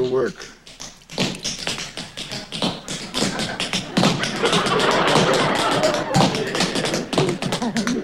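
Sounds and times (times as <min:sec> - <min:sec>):
tap dancing steps on a hard floor: 0:00.0 - 0:08.0
speech: 0:00.2 - 0:00.6
laughter: 0:03.2 - 0:08.0.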